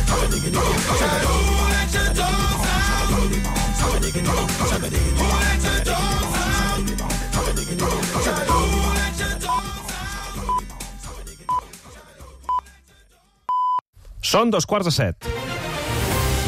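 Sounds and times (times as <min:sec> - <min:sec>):
loud pop chorus over a pounding beat: 0:00.0 - 0:13.7
short evenly spaced electronic beeps: 0:13.5 - 0:13.8
speech: 0:14.4 - 0:15.3.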